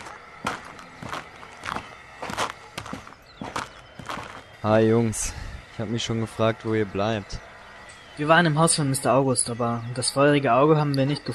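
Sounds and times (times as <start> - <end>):
footsteps of a few people walking: 0.0 - 4.5
speech: 4.6 - 7.5, 8.2 - 11.3.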